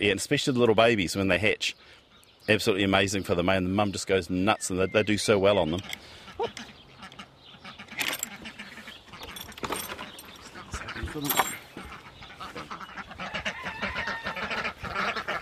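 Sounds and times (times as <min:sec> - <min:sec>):
speech: 0:00.0 - 0:06.8, 0:11.1 - 0:11.5
flock of Buff Orpington ducks quacking: 0:03.2 - 0:15.4.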